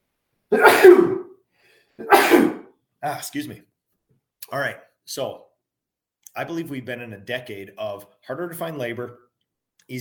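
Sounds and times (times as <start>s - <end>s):
speech: 0.5s - 1.1s, 3.0s - 3.7s, 4.5s - 5.5s, 6.4s - 9.2s
sneeze: 0.5s - 1.4s, 2.0s - 2.8s.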